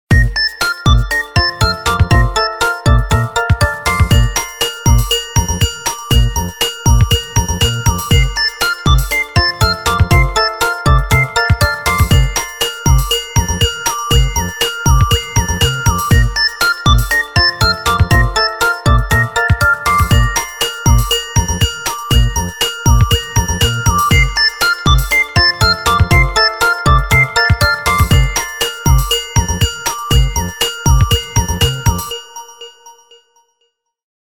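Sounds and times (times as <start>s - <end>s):
Hisense A5 phone ringtone: 0.2s - 33.6s.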